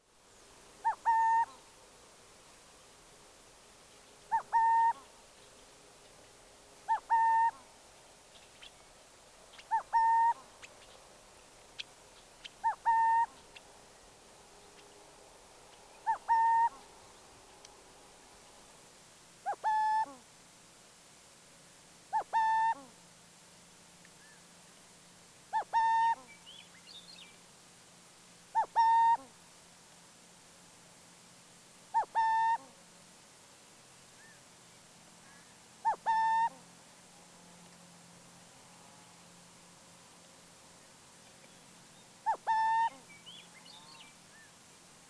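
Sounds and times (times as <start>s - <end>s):
burrowing owl Athene cunicularia calling: 0.8s - 1.6s, 4.3s - 5.1s, 6.8s - 7.7s, 9.5s - 10.9s, 11.8s - 13.6s, 15.9s - 16.9s, 19.4s - 20.2s, 22.1s - 22.9s, 24.2s - 24.4s, 25.5s - 26.6s, 28.5s - 29.3s, 31.9s - 32.7s, 34.2s - 34.4s, 35.2s - 36.6s, 42.2s - 44.5s.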